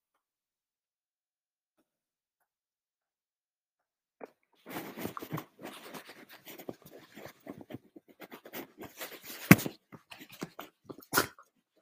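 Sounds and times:
dog snuffles, clicks and rustles: 4.6 - 11.4
dog sneezing: 11.0 - 11.4.

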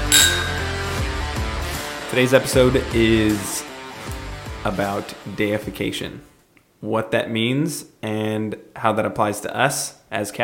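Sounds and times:
glasses clinking in a toast: 0.0 - 1.2
low steady tonal background: 0.0 - 1.6
speech: 2.1 - 3.6, 4.6 - 10.4.

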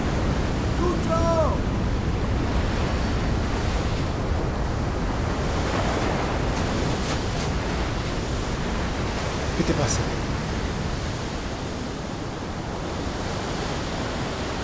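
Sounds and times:
faint gusty wind hiss: 0.0 - 14.6
sea waves breaking on the shore: 0.0 - 14.6
speech: 9.7 - 10.1.

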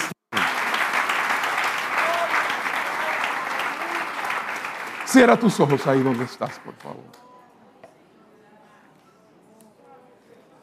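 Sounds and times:
large audience applauding: 0.0 - 7.1
speech: 5.1 - 7.3.

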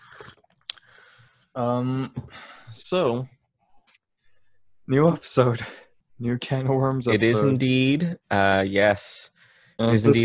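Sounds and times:
wet slurping sip of tea from a cup: 0.0 - 0.8
speech: 1.6 - 3.4, 4.9 - 10.2.

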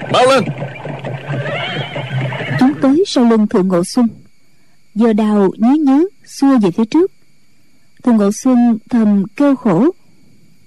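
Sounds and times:
galloping horse hooves: 0.0 - 2.8
horses neighing and whinnying: 0.0 - 2.9
speech: 0.1 - 0.6, 2.8 - 4.2, 5.0 - 7.2, 8.0 - 10.0.

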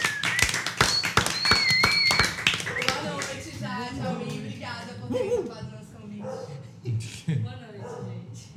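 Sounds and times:
high whistling from audience: 0.0 - 3.1
small audience applause with sharp uneven claps: 0.0 - 3.5
people talking: 2.7 - 8.4.

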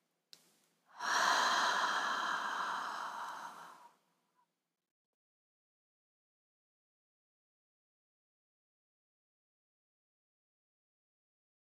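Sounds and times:
deep breath exhaled through the mouth: 1.0 - 3.9.

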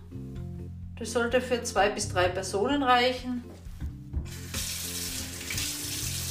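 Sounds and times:
speech: 1.0 - 3.5
kitchen tap water rinsing lentils: 4.4 - 6.3.

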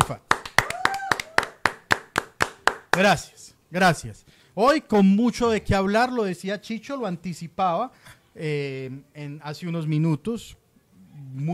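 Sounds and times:
audience clapping to welcome a programme: 0.0 - 3.2
speech: 0.1 - 0.3, 3.0 - 10.6, 11.2 - 11.5.

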